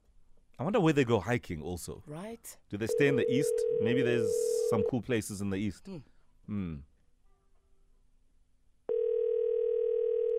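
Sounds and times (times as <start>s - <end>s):
speech: 0.6s - 6.9s
steady telephone dial tone: 8.9s - 10.3s.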